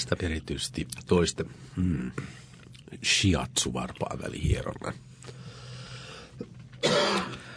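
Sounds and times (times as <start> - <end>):
speech: 0.0 - 5.4
harsh cough from a person with a tickle in the throat: 6.8 - 7.5.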